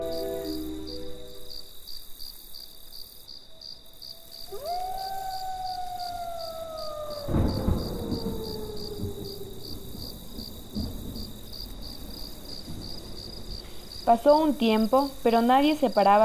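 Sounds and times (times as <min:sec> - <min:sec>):
crickets chirping: 0:00.0 - 0:16.2
long falling howl-like tone: 0:04.2 - 0:10.6
thunderclap rolling into a low rumble at night by a roadside: 0:04.4 - 0:16.2
speech: 0:14.1 - 0:16.2.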